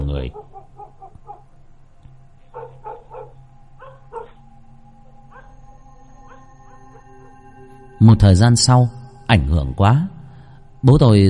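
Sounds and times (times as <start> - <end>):
steady low hum: 0.0 - 11.2
speech: 0.2 - 0.8, 8.0 - 10.2, 10.8 - 11.2
dog barking toward a bamboo thicket: 0.3 - 1.5, 2.5 - 4.5, 5.3 - 5.6, 6.2 - 7.4
dog howling: 0.3 - 1.5, 2.5 - 7.7.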